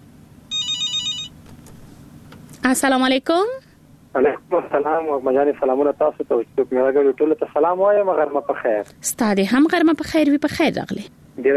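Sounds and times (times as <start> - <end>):
low hum: 0.0 - 11.5
bright trilling electronic telephone ring: 0.5 - 1.4
speech: 2.6 - 11.5.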